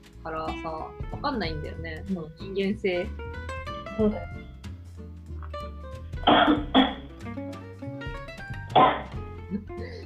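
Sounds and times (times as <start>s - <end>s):
speech: 0.2s - 4.4s, 6.3s - 6.8s
coughs turned away from the microphone: 6.3s - 7.0s.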